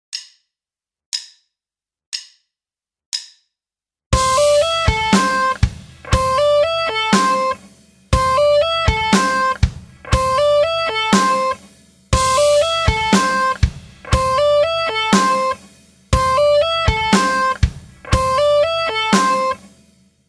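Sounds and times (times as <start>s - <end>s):
guitar playing pentatonic scales: 4.2s - 7.6s, 8.2s - 11.6s, 12.2s - 15.6s, 16.2s - 19.6s.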